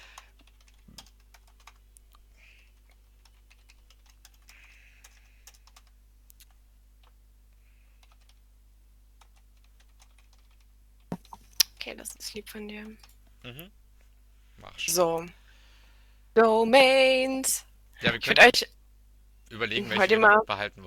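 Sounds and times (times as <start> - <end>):
rapid typing on a computer keyboard into a text editor: 0.1 - 1.9, 2.5 - 7.2, 8.0 - 8.4, 9.2 - 10.7
speech: 11.9 - 13.8, 14.6 - 15.4, 16.4 - 18.7, 19.5 - 20.8.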